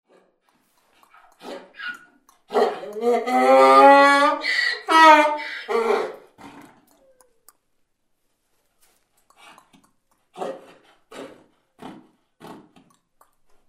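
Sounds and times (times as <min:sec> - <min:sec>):
donkeys braying: 0:01.0 - 0:07.5.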